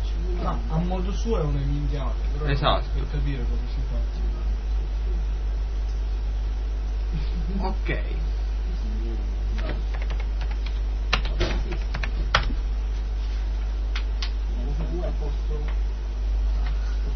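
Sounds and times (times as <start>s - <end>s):
low steady hum: 0.0s - 17.1s
speech: 0.5s - 4.5s, 7.1s - 8.4s, 15.1s - 15.9s
typing a command on a computer keyboard: 9.6s - 12.5s.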